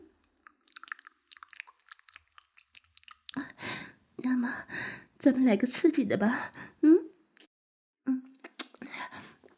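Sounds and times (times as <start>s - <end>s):
wet tongue licking mouth sounds: 0.4s - 3.5s, 8.3s - 8.9s
speech: 4.2s - 6.6s.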